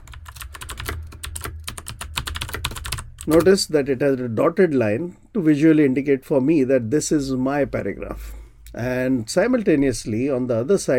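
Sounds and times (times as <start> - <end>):
typing on a computer keyboard into a document: 0.0 - 3.5
speech: 3.2 - 10.9.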